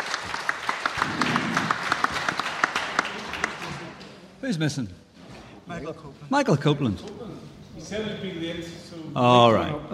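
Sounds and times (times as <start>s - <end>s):
audience applauding: 0.0s - 4.0s
speech: 4.4s - 5.0s, 5.7s - 9.9s.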